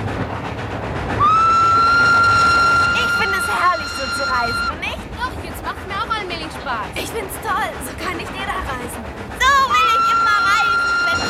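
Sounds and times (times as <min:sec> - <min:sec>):
train rumbling along the rails: 0:00.0 - 0:11.2
train whistle: 0:01.2 - 0:05.0, 0:09.4 - 0:11.2.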